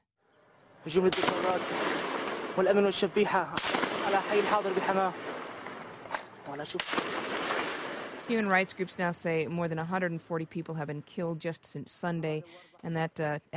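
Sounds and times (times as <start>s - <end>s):
speech: 0.8s - 5.3s, 6.4s - 13.5s
gunfire during a military incursion into a city: 0.9s - 8.5s.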